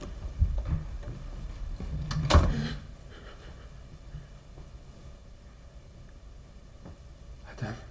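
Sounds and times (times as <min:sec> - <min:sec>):
quiet hum: 0:00.0 - 0:07.8
heavy door opening: 0:02.0 - 0:02.8.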